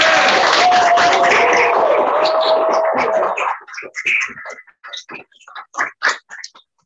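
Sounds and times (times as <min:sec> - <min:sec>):
roomful of people applauding: 0:00.0 - 0:04.0.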